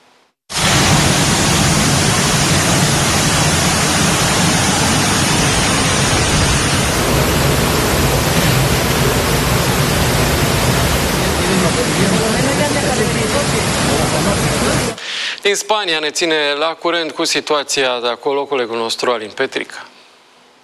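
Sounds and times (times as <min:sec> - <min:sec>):
rushing floodwater from torrential rain: 0:00.6 - 0:15.0
speech: 0:15.5 - 0:20.0.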